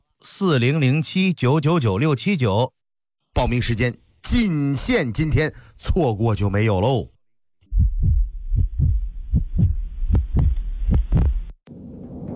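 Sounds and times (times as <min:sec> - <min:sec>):
speech: 0:00.2 - 0:02.8, 0:03.4 - 0:07.1
deep booming heartbeat sound effect: 0:07.6 - 0:11.6.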